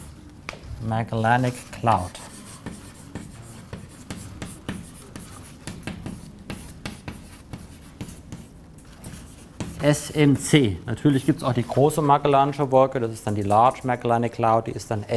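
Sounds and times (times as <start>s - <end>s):
speech: 0.8s - 2.3s, 9.8s - 15.1s
pen or marker scratching in handwriting strokes: 1.4s - 10.0s.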